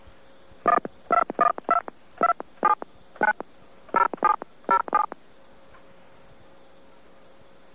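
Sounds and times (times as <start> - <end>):
telephone keypad DTMF dialing tones: 0.7 - 5.2.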